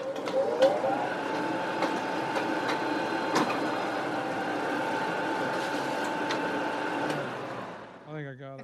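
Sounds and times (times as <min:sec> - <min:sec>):
office copy machine running: 0:00.0 - 0:08.2.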